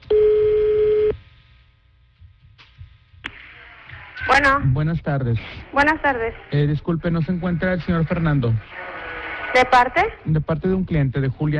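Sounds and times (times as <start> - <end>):
telephone tone as a call is placed: 0.0 - 1.1
speech: 4.4 - 8.8, 9.5 - 11.5.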